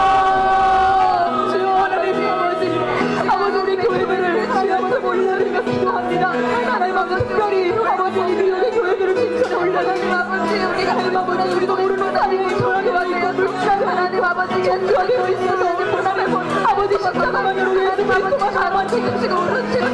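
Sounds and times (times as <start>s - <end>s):
audience shouting: 0.0s - 3.0s
crowd praying aloud: 0.0s - 19.9s.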